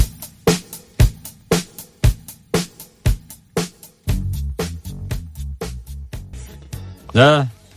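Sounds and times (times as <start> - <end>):
crisp drum-machine beat in a 1980s pop song: 0.0 - 7.0
deep synth bass line in a 1980s pop song: 4.1 - 6.5
speech: 7.2 - 7.6.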